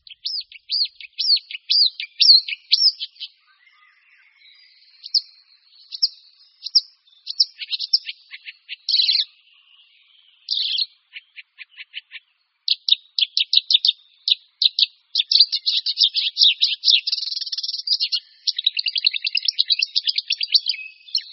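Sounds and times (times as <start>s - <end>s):
marsh warbler song mimicking calls of other birds: 0.0s - 21.3s.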